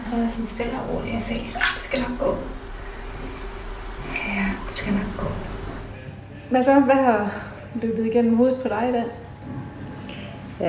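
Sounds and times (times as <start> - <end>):
speech: 0.1 - 2.6, 4.1 - 5.5, 6.5 - 9.6
water running from handheld shower head: 1.2 - 5.9.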